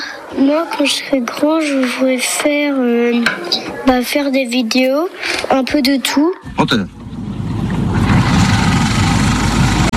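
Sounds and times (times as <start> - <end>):
speech: 0.3 - 7.0
car engine idling with a loud low rumble: 6.5 - 9.9.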